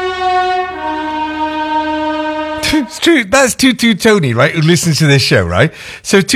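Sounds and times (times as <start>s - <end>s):
passing train sounding its horn: 0.0s - 3.1s
speech: 2.7s - 6.3s.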